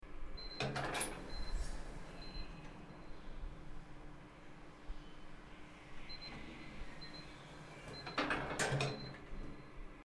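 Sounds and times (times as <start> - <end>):
elevator door opening and closing: 0.4 - 2.9, 6.1 - 9.7.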